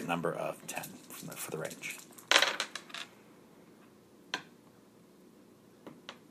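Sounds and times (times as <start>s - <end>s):
speech: 0.1s - 2.1s
four dice clattering onto a hard surface: 1.1s - 3.1s.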